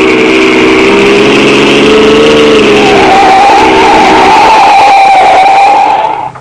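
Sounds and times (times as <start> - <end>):
car engine revving as it accelerates hard in pursuit of another car: 0.0 - 6.3.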